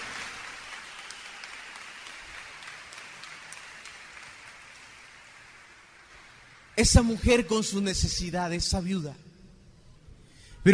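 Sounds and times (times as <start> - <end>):
audience applauding: 0.0 - 6.8
speech: 6.8 - 9.3.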